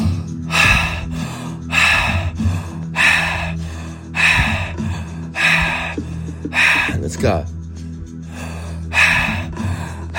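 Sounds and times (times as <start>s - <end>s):
paced breathing in and out through the mouth: 0.0s - 7.2s, 7.8s - 10.1s
low tonal hum: 0.0s - 10.1s
speech: 7.2s - 7.6s.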